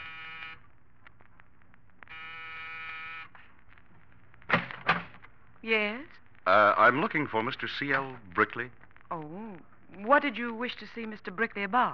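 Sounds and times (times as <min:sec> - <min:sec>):
electric apartment door buzzer in an apartment building corridor in New York: 0:00.0 - 0:00.6, 0:02.1 - 0:03.3
speech: 0:05.6 - 0:11.9.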